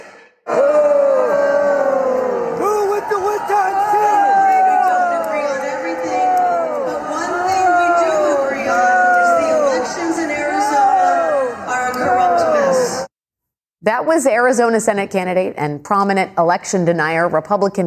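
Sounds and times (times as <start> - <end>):
large indoor convention crowd booing a speaker: 0.4 - 13.1
speech: 13.8 - 17.8.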